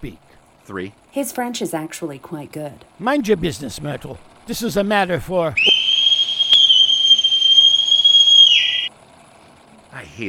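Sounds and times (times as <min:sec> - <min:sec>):
speech: 0:00.0 - 0:05.7
loud piercing whistle in a newsroom: 0:05.6 - 0:08.9.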